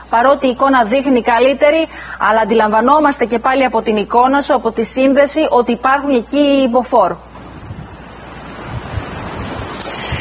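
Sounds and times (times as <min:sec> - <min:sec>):
speech: 0:00.1 - 0:07.3
strong northeast wind buffeting the microphone: 0:07.3 - 0:10.1
surf and waves: 0:07.4 - 0:10.1.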